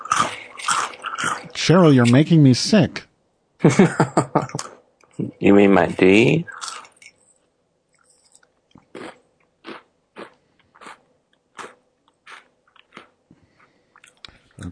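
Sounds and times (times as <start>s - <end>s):
crunchy wet chewing of food: 0.0s - 2.2s, 6.5s - 7.0s, 8.0s - 14.7s
speech: 1.6s - 6.5s
laughter: 3.6s - 4.7s.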